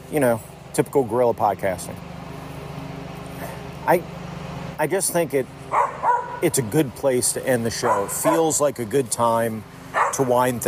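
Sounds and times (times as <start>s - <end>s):
speech: 0.1s - 2.1s, 3.9s - 4.2s, 4.8s - 10.6s
dog barking outdoors: 5.7s - 6.4s, 7.8s - 8.6s, 10.0s - 10.3s.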